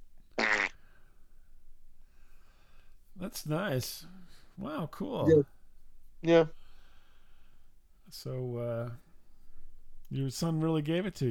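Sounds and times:
quiet hiss: 0.0 - 11.2
loud buzzy fart: 0.4 - 0.8
speech: 3.2 - 5.6, 6.2 - 6.6, 8.1 - 9.0, 10.1 - 11.2.

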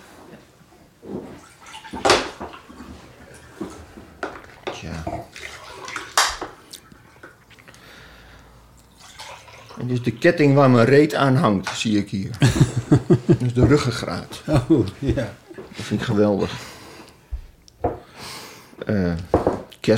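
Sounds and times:
water being poured into a glass: 4.4 - 7.3, 8.9 - 10.5
speech: 4.8 - 5.2, 9.8 - 16.7, 18.9 - 19.3
laughter: 12.4 - 16.0.

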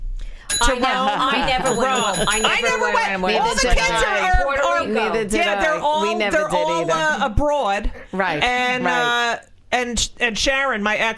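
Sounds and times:
bright bell ringing in quick repeated dings: 0.4 - 4.4
several voices talking and laughing: 0.5 - 9.4
speech: 0.6 - 11.1.

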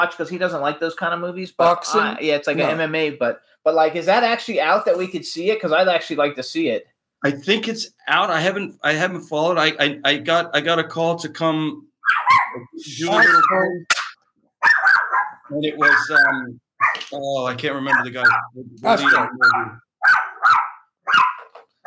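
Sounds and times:
speech: 0.0 - 14.0, 15.5 - 20.2
small dog barking: 12.0 - 12.6, 14.6 - 17.0, 17.8 - 21.8.

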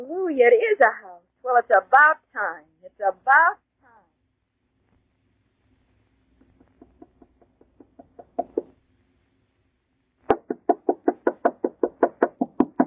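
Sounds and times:
speech: 0.4 - 3.6
knuckles knocking on a wooden house door: 6.9 - 8.7, 10.3 - 12.8.

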